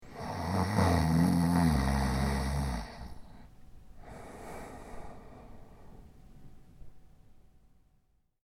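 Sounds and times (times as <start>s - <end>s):
man snoring: 0.0s - 3.4s.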